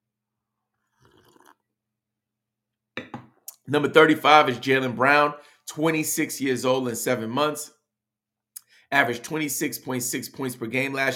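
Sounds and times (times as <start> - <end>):
person slurping coffee: 0.7 - 1.7
speech: 3.7 - 7.8, 8.9 - 11.1.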